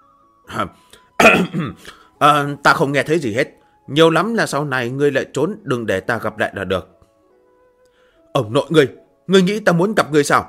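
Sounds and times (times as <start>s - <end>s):
speech: 0.6s - 6.9s, 8.4s - 10.4s
man giving dry throat-clearing coughs: 1.2s - 1.9s.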